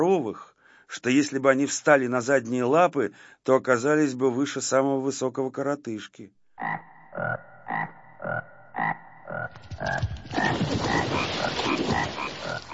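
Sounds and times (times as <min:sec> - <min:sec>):
speech: 0:00.0 - 0:11.0
chorus of many frogs croaking: 0:06.6 - 0:12.7.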